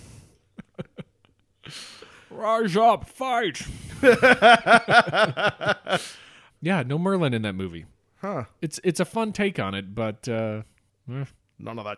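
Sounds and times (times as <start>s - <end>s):
heavy breathing through the nose with snorting puffs: 0.0s - 0.5s, 1.6s - 2.4s, 5.9s - 6.6s
speech: 1.7s - 11.9s
laughter: 4.0s - 6.1s.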